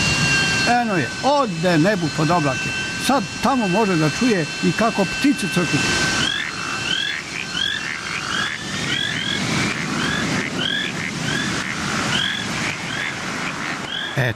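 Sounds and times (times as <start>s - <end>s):
speech: 0.7s - 6.1s, 14.2s - 14.3s
dense chorus of frogs croaking: 6.1s - 14.3s
noise: 14.0s - 14.3s.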